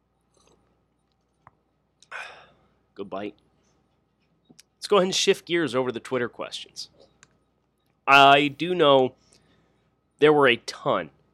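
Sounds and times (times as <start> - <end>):
person sipping rye bourbon from a glass: 0.3 - 0.8
speech: 3.0 - 3.4, 4.9 - 7.0, 8.1 - 9.2, 10.2 - 11.2.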